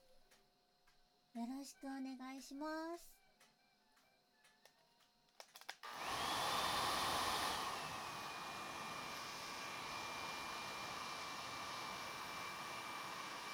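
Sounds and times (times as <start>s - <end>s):
speech: 1.4s - 3.2s
hair dryer blowing: 5.8s - 13.5s.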